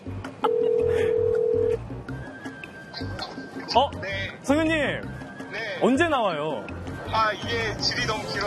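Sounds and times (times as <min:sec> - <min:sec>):
steady electronic phone ringback tone: 0:00.4 - 0:01.8
speech: 0:03.7 - 0:05.1, 0:05.8 - 0:08.4.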